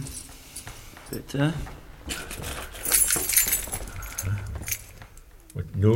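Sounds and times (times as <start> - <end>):
bunch of keys jangling: 0.0 - 1.4, 2.1 - 5.4
soft rustle: 0.0 - 5.5
speech: 1.1 - 2.5, 5.8 - 5.9.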